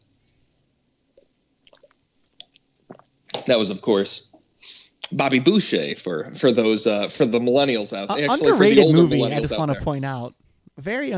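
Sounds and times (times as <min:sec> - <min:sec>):
person sipping and swallowing water: 0:01.6 - 0:03.3
speech: 0:03.5 - 0:04.3, 0:05.1 - 0:11.1
laughter: 0:08.1 - 0:09.8.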